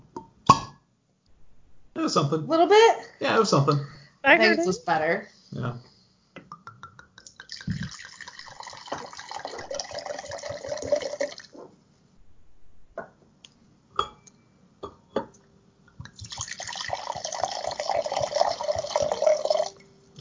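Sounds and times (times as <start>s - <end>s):
speech: 2.0s - 5.9s
red Tempranillo wine from Spain pouring from a bottle: 7.1s - 11.6s, 16.1s - 19.8s.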